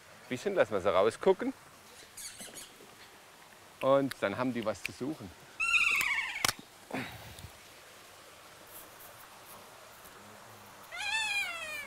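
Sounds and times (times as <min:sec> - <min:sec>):
speech: 0:00.3 - 0:01.7, 0:03.8 - 0:05.4
kea parrots screeching in the snow: 0:02.0 - 0:02.8, 0:05.6 - 0:06.6, 0:10.9 - 0:11.8.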